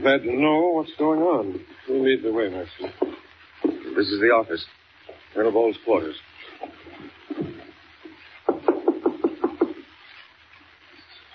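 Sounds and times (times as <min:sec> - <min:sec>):
speech: 0:00.0 - 0:03.0, 0:04.0 - 0:07.5
knocking on the wooden door of office quarters: 0:03.0 - 0:03.9, 0:08.5 - 0:09.8
softer scattered thumps: 0:06.6 - 0:09.9.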